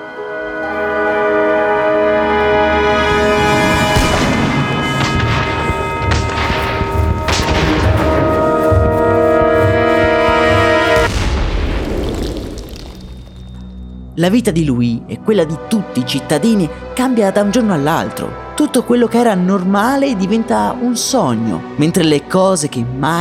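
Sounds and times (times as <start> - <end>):
sustained musical drone: 0.0 - 11.2
heavy cannon fire toward city walls: 3.9 - 13.3
speech: 14.2 - 23.2.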